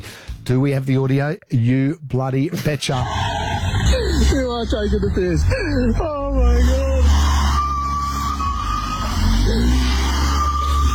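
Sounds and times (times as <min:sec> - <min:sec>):
speech: 0:00.5 - 0:03.2, 0:04.2 - 0:07.0
car engine revving with handbrake on: 0:03.0 - 0:10.9.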